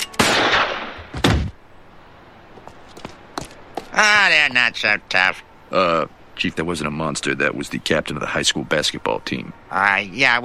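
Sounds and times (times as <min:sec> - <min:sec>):
policeman's gun firing in a cartoon: 0:00.2 - 0:01.6
speech: 0:04.0 - 0:10.4.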